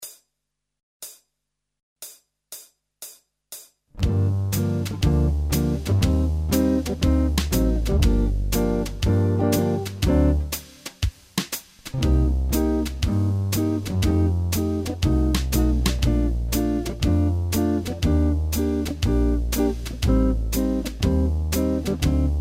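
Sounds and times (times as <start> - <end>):
jazz playback in G minor: 4.0 - 11.1, 11.9 - 22.3.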